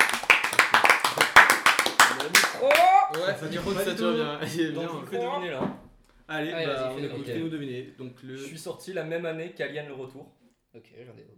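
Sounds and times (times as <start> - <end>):
people clapping for a player at a guessing game: 0.0 - 3.5
speech: 3.2 - 11.3.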